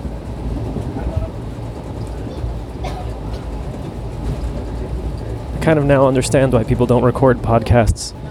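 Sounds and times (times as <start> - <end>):
air conditioning hum: 0.0 - 8.2
train carriage vibration: 0.0 - 8.2
faint clanks: 0.8 - 5.7
speech: 5.6 - 8.2.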